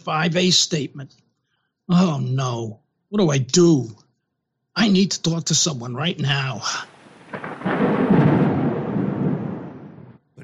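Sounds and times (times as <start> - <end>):
speech: 0.0 - 1.2, 1.9 - 4.0, 4.8 - 7.5
rain hissing: 6.3 - 10.1
thunder rumbling on a stormy night: 6.6 - 10.2.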